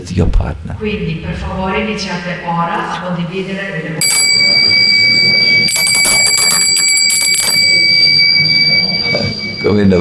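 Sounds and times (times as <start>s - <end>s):
speech: 0.0s - 4.8s, 9.7s - 9.9s
bright high-pitched alarm bell ringing: 4.0s - 9.9s.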